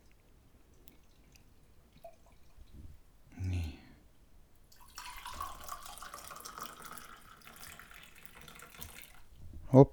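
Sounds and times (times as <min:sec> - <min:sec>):
coffee dripping through a filter into a cup: 0:00.7 - 0:02.7, 0:04.6 - 0:09.4
speech: 0:09.7 - 0:09.9.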